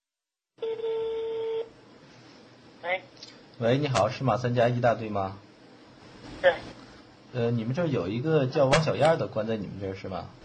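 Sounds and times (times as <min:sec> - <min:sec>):
telephone line tone as a call is dialed: 0:00.6 - 0:01.7
speech: 0:02.9 - 0:05.5, 0:06.4 - 0:10.4.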